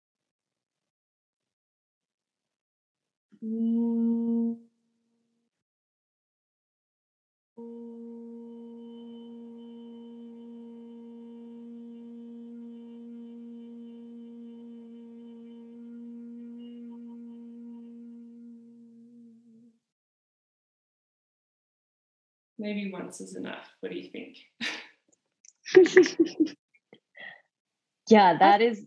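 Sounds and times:
speech: 0:03.4 - 0:03.8, 0:22.6 - 0:24.8, 0:25.8 - 0:26.6, 0:28.1 - 0:28.8
person humming a low steady tone with ears closed: 0:03.4 - 0:04.7, 0:07.6 - 0:19.8
laughter: 0:25.7 - 0:26.5.

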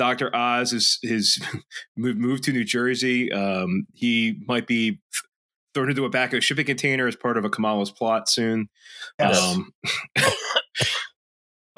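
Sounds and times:
speech: 0:00.0 - 0:11.1
raspy coughs: 0:09.1 - 0:11.2.

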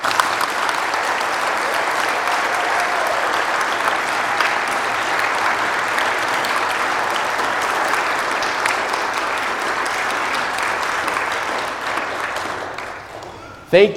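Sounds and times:
large audience applauding teachers: 0:00.0 - 0:13.7
speech: 0:13.7 - 0:13.9.

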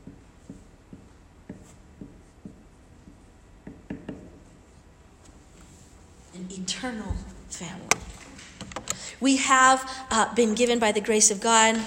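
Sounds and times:
chalk or marker tapping and scratching on a board: 0:00.0 - 0:04.8
low room hum: 0:00.0 - 0:11.8
speech: 0:06.7 - 0:08.2, 0:09.2 - 0:11.8.

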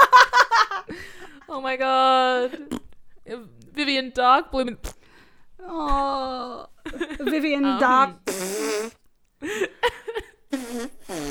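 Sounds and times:
speech: 0:01.6 - 0:05.0, 0:05.6 - 0:11.3
wet arm farts made with a bare arm: 0:08.3 - 0:09.0, 0:10.6 - 0:11.3.

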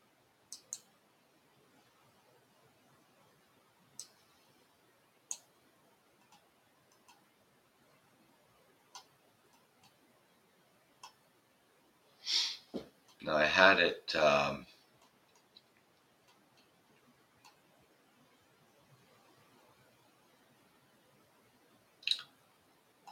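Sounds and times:
faint hiss: 0:00.0 - 0:23.1
computer mouse button clicks: 0:00.5 - 0:00.9, 0:04.0 - 0:04.2, 0:05.3 - 0:05.5, 0:06.2 - 0:07.3, 0:08.9 - 0:10.0, 0:11.0 - 0:11.2
speech: 0:13.3 - 0:14.7.

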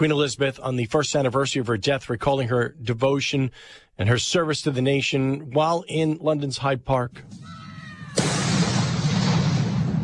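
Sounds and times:
speech: 0:00.0 - 0:07.5
cannon salute blast: 0:08.1 - 0:10.0.

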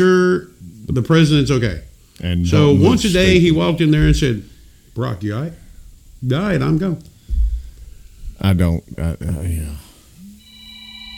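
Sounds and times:
speech: 0:00.0 - 0:05.6, 0:06.2 - 0:07.1, 0:08.4 - 0:09.8
phone electronic ringtone: 0:10.2 - 0:11.1.

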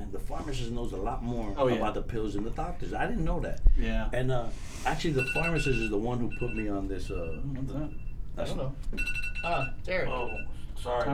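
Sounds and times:
speech: 0:00.5 - 0:11.1
phone alarm with bright electronic tone: 0:05.1 - 0:08.3, 0:09.0 - 0:10.6.

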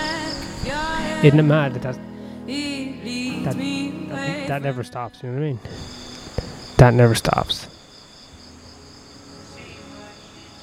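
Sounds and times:
cicadas chorusing at night: 0:00.0 - 0:01.2, 0:05.6 - 0:10.6
speech: 0:01.2 - 0:02.6, 0:03.4 - 0:05.9, 0:06.8 - 0:07.6.

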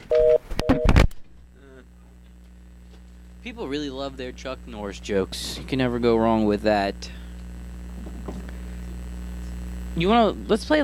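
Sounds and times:
telephone tone after caller hangs up: 0:00.1 - 0:00.9
speech: 0:03.4 - 0:07.2, 0:10.0 - 0:10.8.

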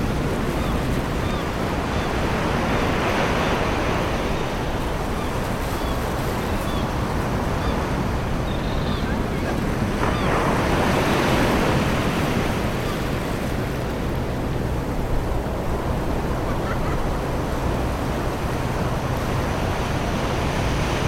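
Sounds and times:
surf on a summer beach: 0:00.0 - 0:21.0
people laughing on a beach: 0:16.4 - 0:17.2.

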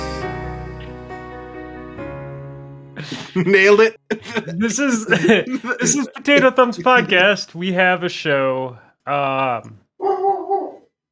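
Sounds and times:
laughter: 0:03.0 - 0:07.4
speech: 0:03.0 - 0:09.8
dog barking: 0:10.0 - 0:10.8.

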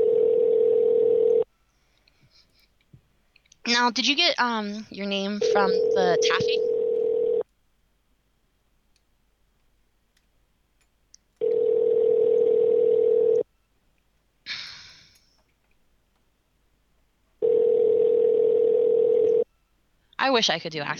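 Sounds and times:
electronic phone ringback tone on the caller's end: 0:00.0 - 0:01.4, 0:05.4 - 0:07.4, 0:11.4 - 0:13.4, 0:17.4 - 0:19.5
speech: 0:03.7 - 0:06.7, 0:20.3 - 0:20.9.

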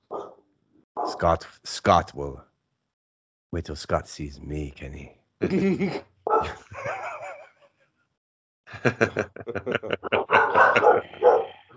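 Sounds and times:
dogs barking and yelping: 0:00.0 - 0:00.4, 0:06.3 - 0:07.3, 0:10.0 - 0:11.7
speech: 0:01.1 - 0:02.5, 0:03.5 - 0:07.0, 0:08.8 - 0:11.4
laughter: 0:05.4 - 0:07.6, 0:08.7 - 0:11.6.

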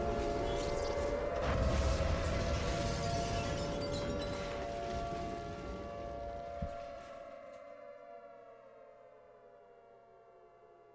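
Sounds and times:
air raid siren wailing: 0:00.0 - 0:08.0.

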